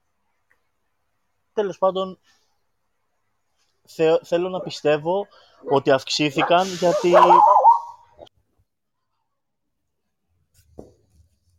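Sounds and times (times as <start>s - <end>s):
speech: 1.6s - 2.4s, 3.9s - 7.5s
dog barking: 6.4s - 8.1s
faint brief dog yip: 6.4s - 8.3s.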